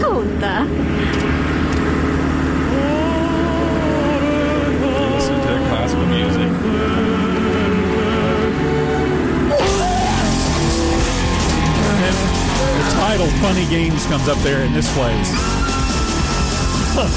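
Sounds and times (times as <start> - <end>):
loud harsh distorted death metal with guitars and drums: 0.4 - 17.1
speech: 13.4 - 15.6, 17.0 - 17.1.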